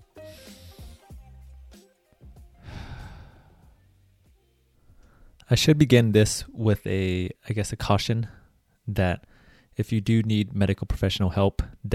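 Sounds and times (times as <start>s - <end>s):
deep breath taken to ease anxiety: 2.6s - 3.9s, 4.8s - 5.4s, 9.2s - 9.8s
speech: 5.5s - 11.9s.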